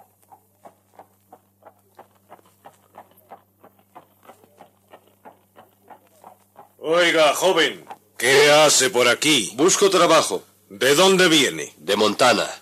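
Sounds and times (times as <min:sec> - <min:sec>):
horse hooves clip-clopping at a walking pace as a rider departs a town: 0:00.0 - 0:08.8
faint low hum: 0:00.0 - 0:12.6
speech: 0:06.8 - 0:12.6.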